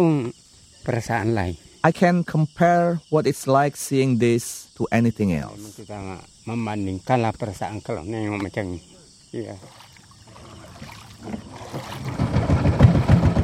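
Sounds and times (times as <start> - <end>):
speech: 0.0 - 9.8, 11.2 - 12.2
faint insect chirr: 0.0 - 13.4
small wooden boat's outboard motor rumbling over water on a canal: 9.6 - 13.4.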